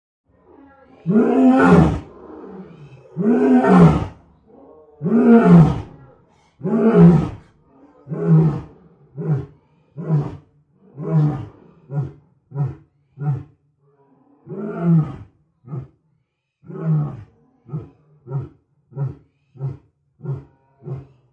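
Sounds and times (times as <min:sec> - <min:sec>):
massive lion roar: 0:00.4 - 0:16.0, 0:16.6 - 0:21.3.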